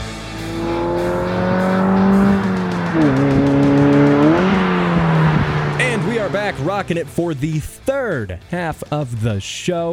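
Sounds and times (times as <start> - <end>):
car engine revving: 0.0 - 7.9
tires squealing against the pavement: 0.4 - 7.5
speech: 6.6 - 9.9.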